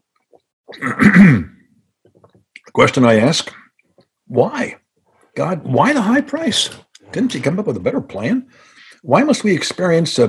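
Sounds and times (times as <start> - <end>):
speech: 0.7 - 1.5, 2.8 - 3.6, 4.3 - 4.8, 5.4 - 10.2
gravelly throat clearing with cough-like burst: 0.7 - 1.7.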